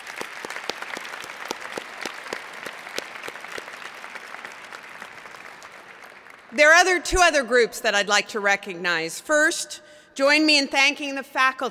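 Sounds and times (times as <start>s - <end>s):
large audience applause: 0.0s - 6.6s
speech: 6.5s - 11.6s.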